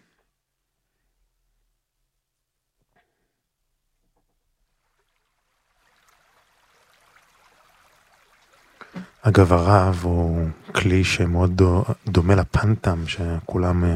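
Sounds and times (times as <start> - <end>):
gentle flowing stream water: 4.6 - 10.6
speech: 9.2 - 13.9.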